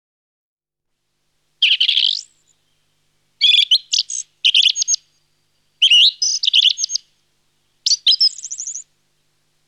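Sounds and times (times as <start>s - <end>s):
song thrush singing: 1.6s - 9.0s.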